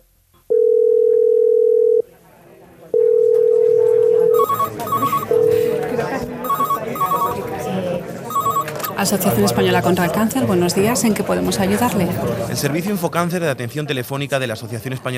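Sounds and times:
phone line ringing with long steady electronic tones: 0:00.5 - 0:02.0, 0:03.0 - 0:07.6, 0:08.3 - 0:09.2
speech: 0:09.0 - 0:15.1.

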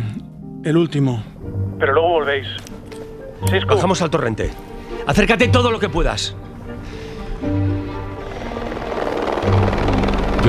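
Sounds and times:
speech: 0:00.6 - 0:02.8, 0:03.4 - 0:06.4
helicopter rotor drone overhead: 0:06.4 - 0:10.4.

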